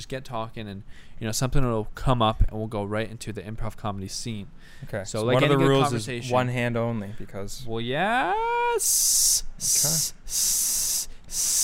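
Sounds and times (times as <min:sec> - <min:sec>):
speech: 0:00.0 - 0:11.6
person hissing like a snake: 0:08.8 - 0:11.6.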